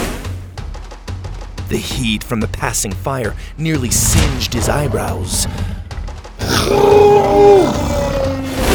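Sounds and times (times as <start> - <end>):
speech: 1.7 - 5.8, 6.4 - 8.0
dinosaur roar: 4.6 - 8.7.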